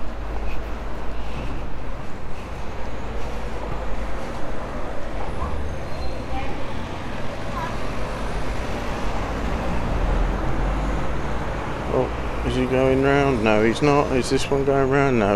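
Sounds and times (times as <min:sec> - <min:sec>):
cars passing on a road: 0:00.0 - 0:15.3
speech: 0:12.7 - 0:15.3.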